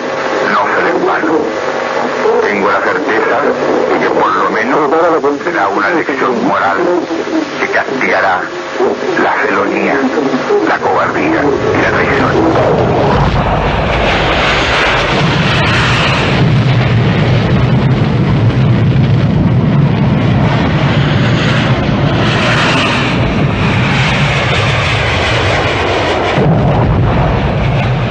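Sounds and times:
Hawker Hunter jet aircraft roaring low: 0.0 - 28.0
speech: 2.5 - 14.6
heavy rumbling bomb explosions: 10.9 - 22.2, 23.1 - 28.0.

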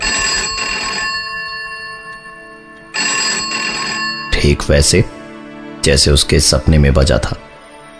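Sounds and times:
telephone ringing with bright electronic warble: 0.0 - 5.2
speech: 4.4 - 5.2, 5.8 - 7.5.

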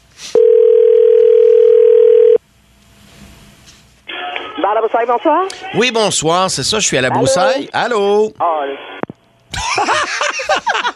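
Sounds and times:
telephone ringing through to a bar: 0.4 - 2.4
speech: 4.9 - 8.8
laughter: 9.5 - 10.9.

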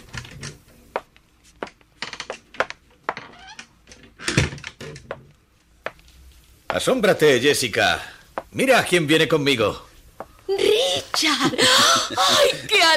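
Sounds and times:
door creaking open with a thud: 3.1 - 5.2
speech: 6.8 - 9.9, 11.2 - 12.9
laughter: 10.5 - 12.9.

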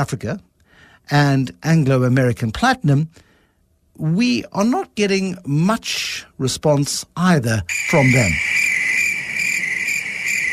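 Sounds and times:
speech: 0.0 - 3.3, 4.0 - 8.6
dense chorus of crickets chirping: 7.7 - 10.5.

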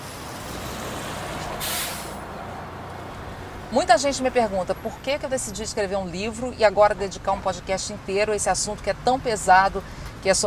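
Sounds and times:
bus engine idling at a bus stop: 0.0 - 10.4
bus air brakes hissing: 0.4 - 2.3
speech: 3.7 - 10.4.

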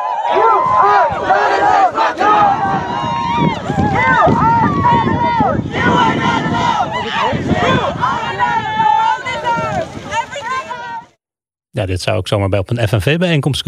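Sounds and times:
large crowd of protesters chanting at a climate demonstration: 0.1 - 11.2
wind buffeting the microphone: 0.3 - 11.2
speech: 11.9 - 13.6.

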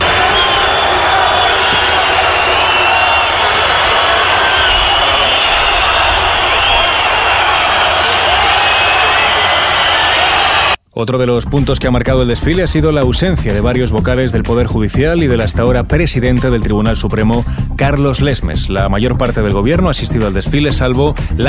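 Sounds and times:
large outdoor crowd at a parade booing: 0.0 - 10.8
people shouting calls for resignation: 0.0 - 10.8
speech: 11.0 - 21.4.

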